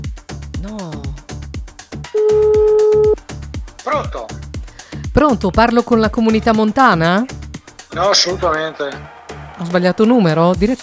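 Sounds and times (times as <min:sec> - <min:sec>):
speech: 0:00.6 - 0:01.2, 0:03.9 - 0:04.4, 0:05.2 - 0:10.8
loud steady single-pitch telephone line beep while placing a call: 0:02.2 - 0:03.2.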